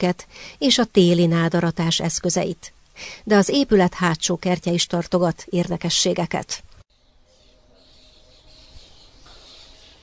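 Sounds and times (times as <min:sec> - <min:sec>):
speech: 0:00.0 - 0:06.7
birds singing in plane trees: 0:07.8 - 0:10.0.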